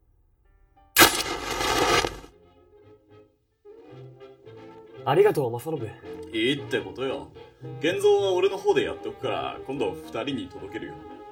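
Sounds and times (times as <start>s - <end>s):
old camera shutter with flash powder burst: 1.0s - 2.3s
speech: 5.0s - 11.1s.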